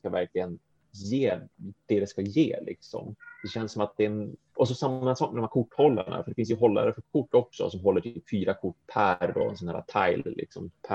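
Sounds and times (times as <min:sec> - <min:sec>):
speech: 0:00.1 - 0:10.9
cat meowing: 0:03.2 - 0:03.6.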